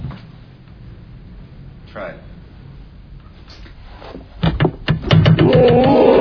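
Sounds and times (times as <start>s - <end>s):
speech: 1.9s - 2.3s, 5.5s - 5.9s
dull heavy knocks on a door: 4.4s - 6.0s.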